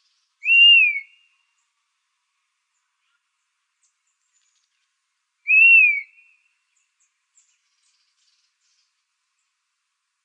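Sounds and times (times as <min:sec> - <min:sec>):
Dusky-capped flycatcher mournful whistled note in Arizona: 0:05.5 - 0:06.2.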